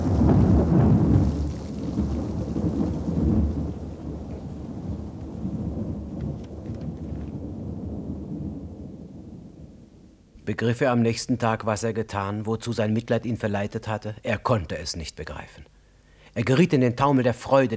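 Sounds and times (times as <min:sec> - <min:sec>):
thunder crashing on a stormy night: 0:00.0 - 0:10.3
steady rain hissing on a stormy night: 0:00.0 - 0:17.7
speech: 0:10.5 - 0:15.8, 0:16.4 - 0:17.7.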